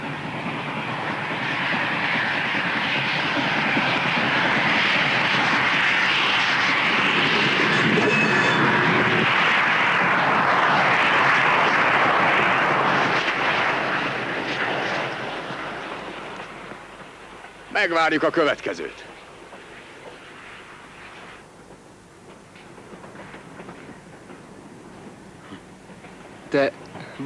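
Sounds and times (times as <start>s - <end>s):
train rolling past: 0.0s - 27.2s
speech: 17.8s - 19.1s, 26.5s - 27.2s.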